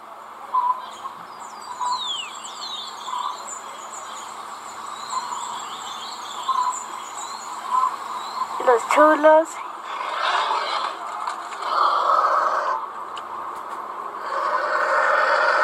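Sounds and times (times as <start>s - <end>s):
faint steady hum: 0.0s - 15.6s
sparrows chirping: 0.6s - 10.0s
speech: 8.7s - 9.6s.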